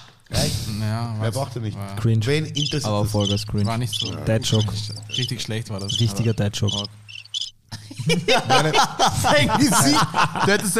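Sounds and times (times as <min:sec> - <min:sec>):
speech: 0:00.8 - 0:07.1, 0:08.0 - 0:10.7
crickets chirping sound effect: 0:02.6 - 0:07.5
laughter: 0:04.0 - 0:06.8, 0:07.7 - 0:10.7.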